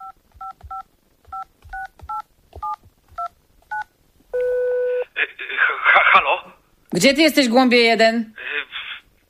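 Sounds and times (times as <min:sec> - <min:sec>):
steady telephone tone: 0:04.4 - 0:05.1
speech: 0:06.9 - 0:08.4.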